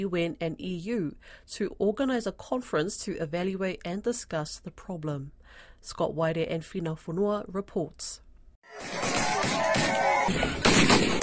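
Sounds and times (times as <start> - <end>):
speech: 0.0 - 11.2
gunfire from gunmen in an armed ambush during a tribal conflict: 8.8 - 11.2.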